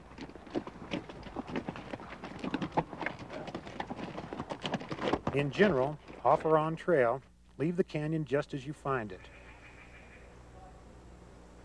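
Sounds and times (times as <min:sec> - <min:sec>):
mule or horse hooves clip-clopping on a dirt canyon trail: 0:00.0 - 0:07.3
speech: 0:05.4 - 0:09.4.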